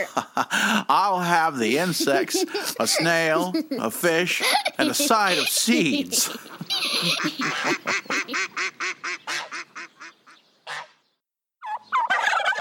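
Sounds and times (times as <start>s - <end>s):
speech: 0.0s - 8.5s
laughter: 0.0s - 9.0s
turkey gobbling: 6.7s - 10.9s, 11.6s - 12.6s.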